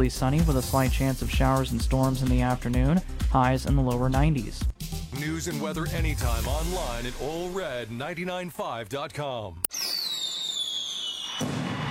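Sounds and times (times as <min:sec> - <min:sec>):
speech: 0:00.0 - 0:10.0
firework whistling at an evening celebration in a city park: 0:09.7 - 0:11.8.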